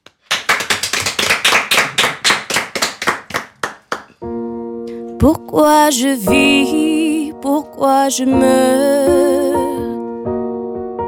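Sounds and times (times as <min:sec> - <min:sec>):
audience clapping in rhythm to encourage a singer: 0:00.0 - 0:04.2
speech: 0:05.2 - 0:09.8.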